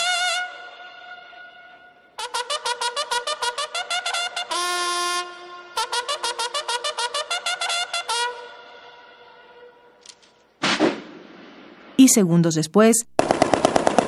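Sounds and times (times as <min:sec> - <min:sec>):
military bugle call: 0:00.0 - 0:10.0
sharp crack: 0:10.0 - 0:12.0, 0:13.2 - 0:14.0
speech: 0:12.1 - 0:13.2.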